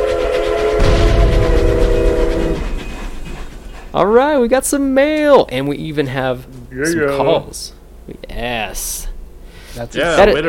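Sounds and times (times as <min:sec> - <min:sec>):
sustained train horn blast: 0:00.0 - 0:03.0
train rumbling and rattling past: 0:00.0 - 0:06.4
speech: 0:03.9 - 0:09.1, 0:09.8 - 0:10.4.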